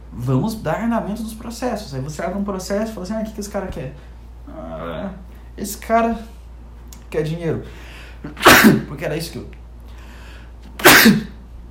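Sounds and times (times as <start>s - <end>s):
speech: 0.2s - 6.4s, 7.1s - 9.6s, 11.0s - 11.3s
person sneezing: 8.2s - 8.9s, 10.8s - 11.4s.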